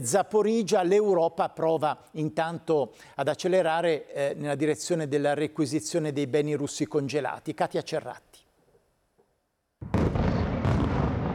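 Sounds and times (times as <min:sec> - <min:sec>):
speech: 0:00.0 - 0:08.3
explosions from ballistic missile strikes: 0:09.8 - 0:11.3.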